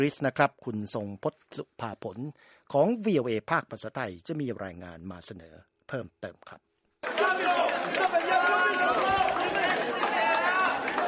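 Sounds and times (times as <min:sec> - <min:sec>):
speech: 0:00.0 - 0:10.0
dense crowd of citizens cheering and shouting at a polling station: 0:07.0 - 0:11.0.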